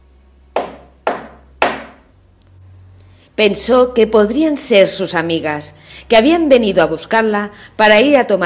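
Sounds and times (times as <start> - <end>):
firm knocks on a wooden door: 0.6 - 2.0
speech: 3.4 - 8.4.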